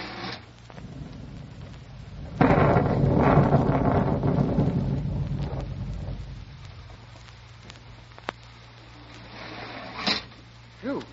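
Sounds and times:
heavy rain: 0:00.0 - 0:11.1
deep rolling rumble of thunder: 0:00.6 - 0:08.3.

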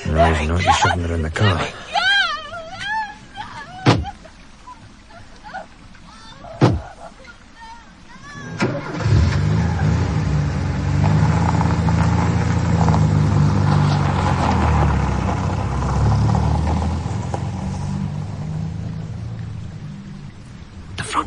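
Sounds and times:
laughter: 0:00.0 - 0:05.8
speech: 0:00.2 - 0:01.9
car doors shutting: 0:03.8 - 0:04.1, 0:08.5 - 0:10.0
car engine turning over: 0:08.5 - 0:19.8.

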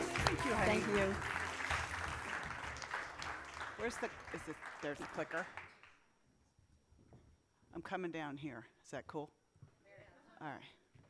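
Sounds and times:
audience applause for a speaker being welcomed onto a stage: 0:00.0 - 0:05.9
speech: 0:00.3 - 0:01.4, 0:03.8 - 0:05.6, 0:07.8 - 0:09.4, 0:10.4 - 0:10.8.

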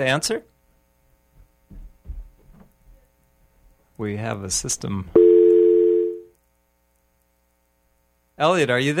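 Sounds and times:
speech: 0:00.0 - 0:00.5, 0:04.0 - 0:05.2, 0:08.4 - 0:08.9
telephone dial tone after a caller has been cut off: 0:05.2 - 0:06.2.

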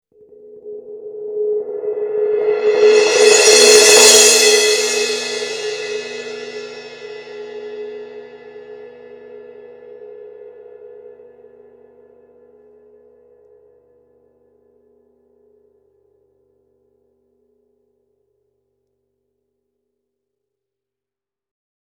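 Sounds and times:
Sabian 16-inch AA Molto Symphonic suspended cymbal roll: 0:00.6 - 0:10.2.

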